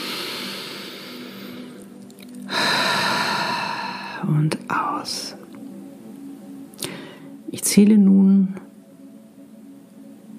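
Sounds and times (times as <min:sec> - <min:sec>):
person breathing in deeply during a guided relaxation exercise: 0:00.0 - 0:01.8, 0:02.5 - 0:04.2, 0:06.8 - 0:07.4
speech: 0:04.2 - 0:05.4, 0:07.6 - 0:08.7.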